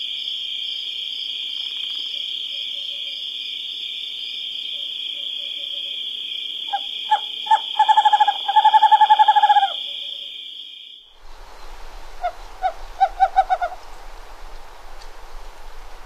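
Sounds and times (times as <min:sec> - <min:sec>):
western screech-owl hooting in North America: 0:06.7 - 0:10.3, 0:12.2 - 0:13.8.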